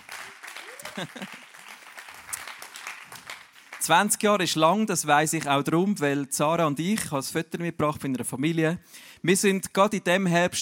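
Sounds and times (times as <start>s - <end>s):
voices calling out and cheering: 0.0s - 1.4s
laughter: 0.0s - 1.8s
crowd applauding: 0.0s - 4.2s
speech: 1.0s - 1.5s, 3.9s - 10.5s.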